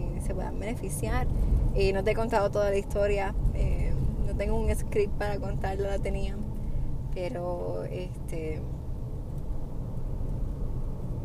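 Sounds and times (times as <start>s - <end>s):
car interior engine and tire drone while driving: 0.0s - 11.2s
speech: 0.3s - 3.7s, 4.4s - 6.4s, 7.2s - 8.8s.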